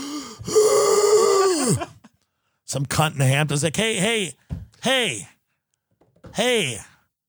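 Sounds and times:
person imitating raspy wheezing gasp for breath: 0.0 - 2.0
speech: 2.7 - 5.3, 6.4 - 6.9.

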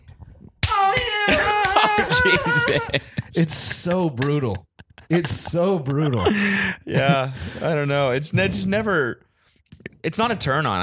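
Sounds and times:
hand slapping skin: 0.6 - 2.1
laughter: 0.8 - 7.8
speech: 2.2 - 9.3, 10.0 - 10.8.

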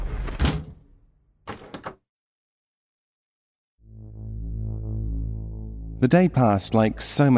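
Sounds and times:
door shutting with a thud: 0.0 - 0.9
metallic rattle of a lock being turned: 1.5 - 2.0
low sustained humming tone: 3.8 - 6.4
speech: 6.0 - 7.3.

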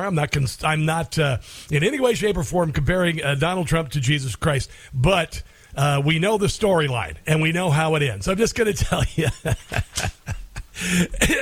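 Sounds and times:
speech: 0.0 - 11.4
laughter: 8.8 - 11.3
harsh coughing after choking on a cough drop: 9.9 - 11.4.

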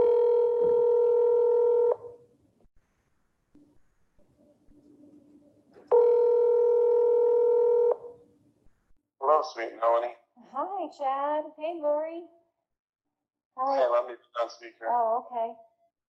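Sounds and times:
ringback tones of an outgoing phone call: 0.0 - 2.2, 5.9 - 8.2
speech: 9.4 - 12.4, 13.6 - 15.7.

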